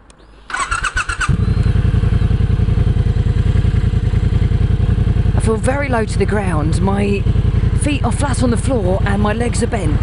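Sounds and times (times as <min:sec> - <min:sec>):
Triumph bobber motorcycle engine cranking and idling: 0:00.0 - 0:10.0
speech: 0:05.5 - 0:10.0.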